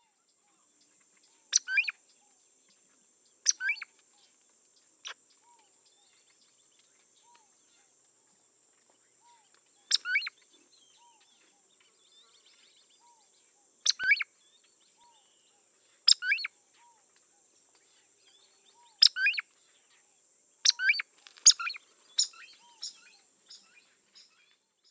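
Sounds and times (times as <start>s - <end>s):
groove-billed ani calling: 1.5s - 2.0s, 3.5s - 3.9s, 9.2s - 10.4s, 13.9s - 14.3s, 16.1s - 17.0s, 18.7s - 19.5s, 20.6s - 23.8s.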